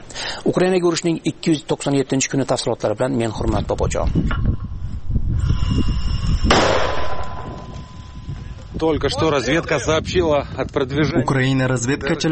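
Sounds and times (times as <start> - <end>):
speech: 0.4 - 4.6, 5.7 - 6.7, 8.8 - 12.3
mortar fire blast: 6.4 - 8.0.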